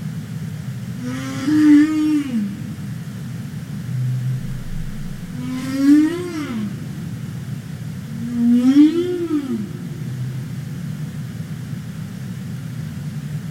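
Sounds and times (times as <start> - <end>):
humpback whale calls: 0.9 - 3.0, 3.7 - 11.2
steady low underwater rumble: 3.9 - 7.0.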